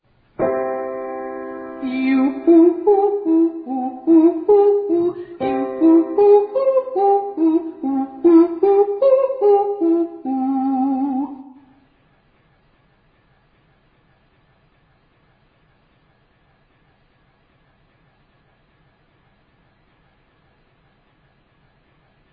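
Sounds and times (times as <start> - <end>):
ascending triads and octaves: 0.4 - 11.5.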